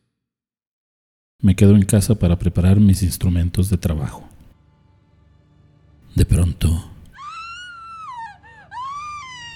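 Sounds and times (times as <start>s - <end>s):
speech: 1.4s - 4.3s, 6.2s - 6.9s
woman's anguished scream in tenement building hallways: 7.2s - 9.5s.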